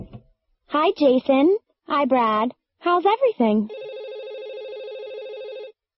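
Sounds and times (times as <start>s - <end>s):
speech: 0.7s - 3.8s
telephone ringing with an electronic trill: 3.7s - 5.8s.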